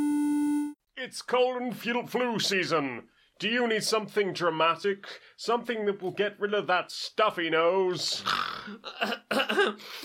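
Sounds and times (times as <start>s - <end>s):
speech: 1.0s - 10.0s
wet phlegmy cough: 8.2s - 10.0s.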